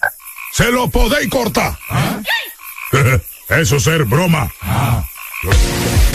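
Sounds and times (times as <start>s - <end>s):
toad croaking in rasping pulses: 0.0s - 6.1s
speech: 0.6s - 5.8s
person laughing: 2.0s - 3.2s.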